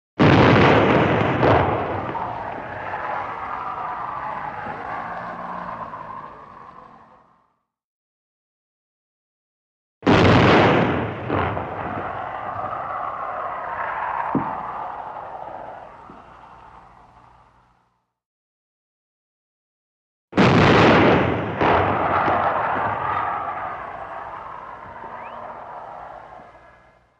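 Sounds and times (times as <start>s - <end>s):
modern artillery cannon shot: 0.2s - 5.4s, 10.0s - 15.6s, 20.4s - 26.1s.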